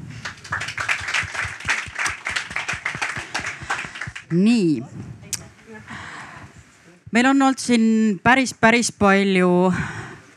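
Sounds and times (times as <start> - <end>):
audience applause: 0.0 - 4.4
speech: 4.3 - 5.0, 7.1 - 10.0.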